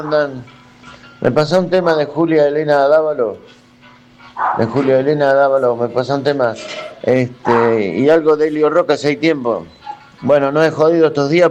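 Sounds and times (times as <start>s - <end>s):
speech: 0.0s - 0.6s, 1.2s - 3.6s, 4.4s - 11.4s
dog barking and yowling: 4.4s - 4.9s.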